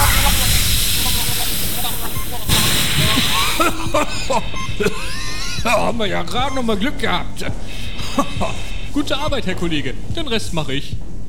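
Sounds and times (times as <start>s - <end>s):
fire extinguisher spraying at a chimney fire: 0.0s - 4.9s, 7.6s - 9.4s
laughter: 0.0s - 9.1s
voices: 0.0s - 11.2s
speech: 4.1s - 11.2s.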